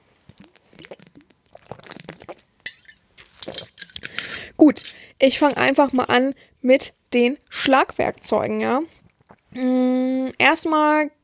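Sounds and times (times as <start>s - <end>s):
glasses clinking together in a toast: 2.7s - 4.0s
speech: 4.6s - 11.2s.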